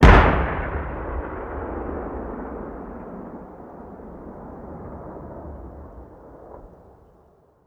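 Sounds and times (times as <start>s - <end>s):
soundscape boom: 0.0s - 4.8s.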